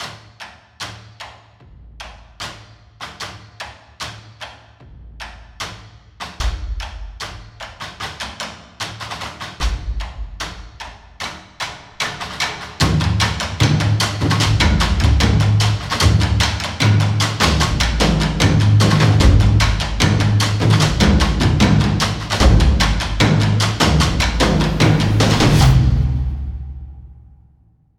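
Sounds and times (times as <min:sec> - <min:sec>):
cinematic trailer percussion: 0:04.8 - 0:08.4, 0:09.6 - 0:27.9.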